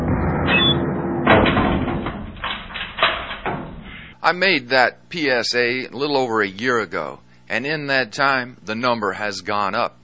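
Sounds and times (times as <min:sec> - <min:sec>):
prison cell door slamming shut: 0:00.4 - 0:04.1
thuds and rattles: 0:01.2 - 0:04.1
speech: 0:04.2 - 0:10.0.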